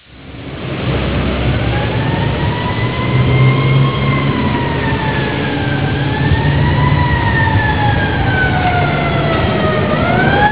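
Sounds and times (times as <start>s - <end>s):
police siren: 0.2s - 10.5s.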